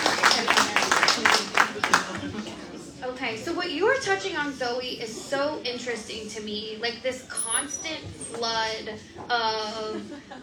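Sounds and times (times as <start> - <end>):
small audience applauding: 0.0 - 2.4
speech: 3.7 - 10.4.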